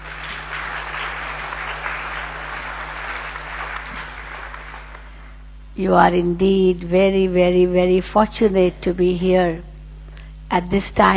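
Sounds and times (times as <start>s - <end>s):
large audience applauding: 0.0s - 5.4s
speech: 5.8s - 9.7s, 10.5s - 11.1s.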